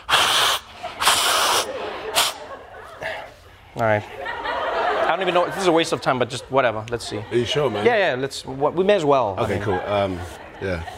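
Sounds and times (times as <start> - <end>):
person blowing their nose: 0.0 - 2.5
laughter: 0.8 - 10.9
speech: 3.8 - 4.2, 5.1 - 10.9.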